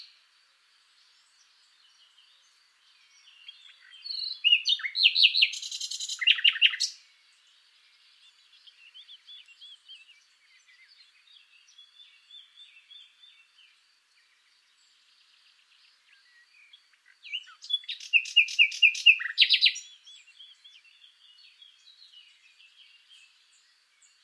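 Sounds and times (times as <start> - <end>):
common nightingale song Luscinia megarhynchos: 0.0 - 24.2.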